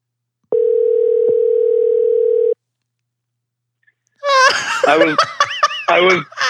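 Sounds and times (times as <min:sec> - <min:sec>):
phone dial tone: 0:00.5 - 0:02.6
bursts of laughter: 0:04.2 - 0:06.4.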